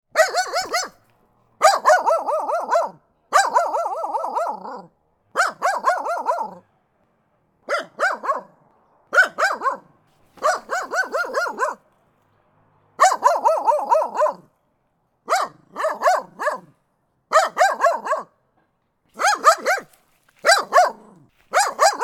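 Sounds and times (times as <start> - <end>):
old dog barking: 0.1 - 6.6, 7.7 - 11.8, 13.0 - 14.5, 15.3 - 18.4, 19.1 - 22.0.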